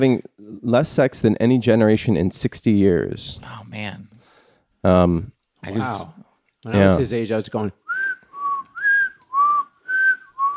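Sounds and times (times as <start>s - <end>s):
speech: 0.0s - 4.1s, 4.8s - 7.8s
person whistling a simple repeating tune: 7.9s - 10.5s.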